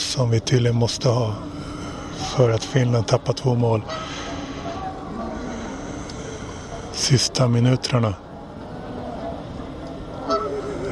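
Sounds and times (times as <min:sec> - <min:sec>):
noisy outdoor background: 0:00.0 - 0:10.9
speech: 0:00.2 - 0:01.6, 0:02.3 - 0:04.1, 0:07.0 - 0:08.3
large bird honking, not a swan: 0:03.8 - 0:04.9, 0:10.2 - 0:10.9.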